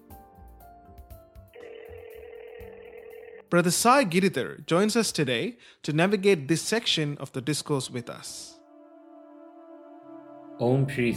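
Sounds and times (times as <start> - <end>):
telephone being dialed, electronic tones: 1.6 - 3.5
speech: 3.5 - 8.6, 10.6 - 11.1.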